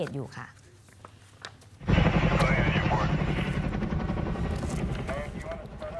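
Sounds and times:
speech: 0:00.0 - 0:00.6, 0:02.9 - 0:03.5
firefighting helicopter rotor thumping overhead: 0:01.8 - 0:05.9.

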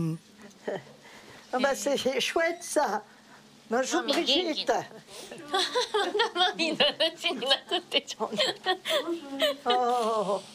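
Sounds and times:
speech: 0:01.5 - 0:03.1, 0:03.7 - 0:10.5
laughter: 0:05.4 - 0:10.3
woman crying and whimpering: 0:07.4 - 0:10.5.

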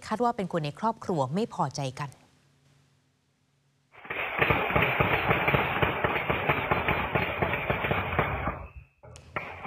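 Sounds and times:
speech: 0:00.1 - 0:02.2
gunfire in a late-night shooting at a house and a pickup truck in Phanat Nikhom, Chonburi, Thailand: 0:04.0 - 0:08.7.

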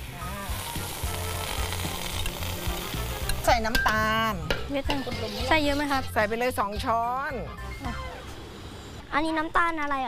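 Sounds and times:
tamarind sauce sizzling in a hot pan: 0:00.0 - 0:05.9
speech: 0:03.5 - 0:08.1, 0:09.1 - 0:10.0.

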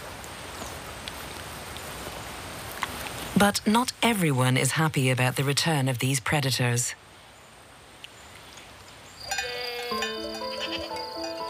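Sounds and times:
soft outdoor hiss: 0:00.0 - 0:11.4
speech: 0:03.4 - 0:07.0
sheep bleating: 0:09.3 - 0:11.0.

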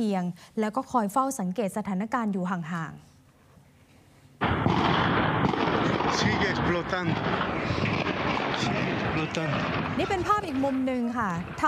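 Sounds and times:
speech: 0:00.0 - 0:03.1, 0:06.1 - 0:11.6
repeated explosions at a military camp in western Bolivia: 0:04.4 - 0:11.6.

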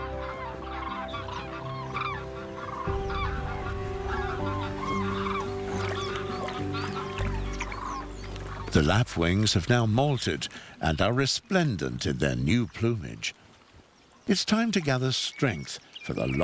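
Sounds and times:
flock of geese from the northern regions honking: 0:00.0 - 0:10.3
speech: 0:08.7 - 0:13.4, 0:14.3 - 0:16.4.

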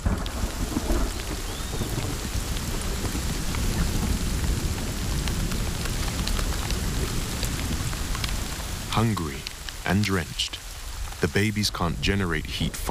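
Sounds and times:
heavy rain from a storm pouring: 0:00.0 - 0:12.8
speech: 0:09.0 - 0:10.6, 0:11.2 - 0:12.8.

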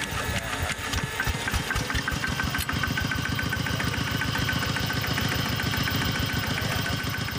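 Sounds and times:
Thai farm truck engine idling while carrying tourists: 0:00.1 - 0:07.3.

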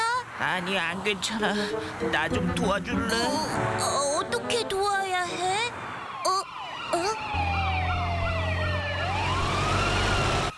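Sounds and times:
speech: 0:00.4 - 0:05.8
siren of an arriving police car wailing: 0:05.2 - 0:10.5.

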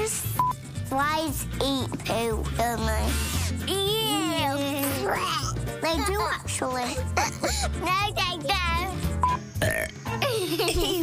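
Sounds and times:
child's voice: 0:00.9 - 0:09.1
speech: 0:00.9 - 0:11.0
child burping loudly: 0:09.6 - 0:10.4
giggling: 0:10.0 - 0:11.0.

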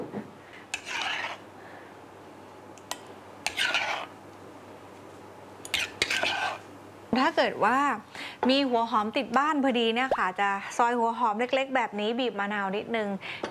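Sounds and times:
utensil scraping and rubbing against a bowl stirring olive oil into salad dressing: 0:00.7 - 0:01.4, 0:03.4 - 0:04.1, 0:05.6 - 0:06.6
speech: 0:07.2 - 0:13.4.

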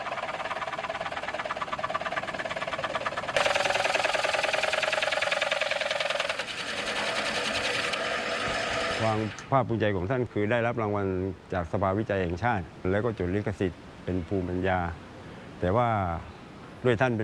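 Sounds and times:
homemade woodworking machine for making coconut shell lamps: 0:00.0 - 0:09.5
speech: 0:09.0 - 0:15.0, 0:15.6 - 0:17.2.

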